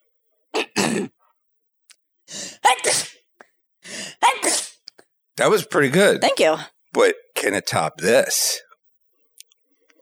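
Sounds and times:
person voicing staged sneezes: 0.6s - 1.2s, 2.3s - 3.3s, 4.1s - 4.8s
speech: 1.0s - 1.2s, 2.3s - 3.2s, 5.4s - 8.6s.

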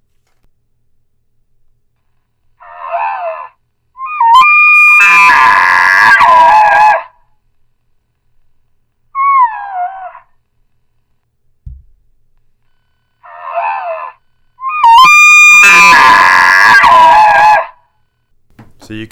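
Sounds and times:
bull elk bugling: 2.6s - 7.2s, 9.1s - 10.3s, 13.2s - 17.8s.

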